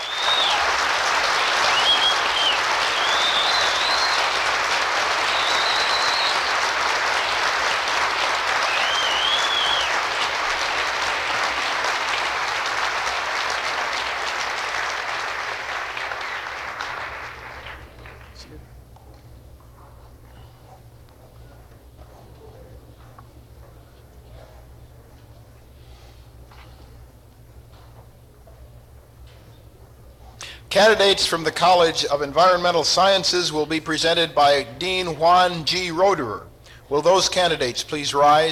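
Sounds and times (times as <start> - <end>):
faint whistles and cheers: 0.0 - 7.3, 8.4 - 10.2
large crowd applauding graduates: 0.0 - 18.7
speech: 30.8 - 38.5.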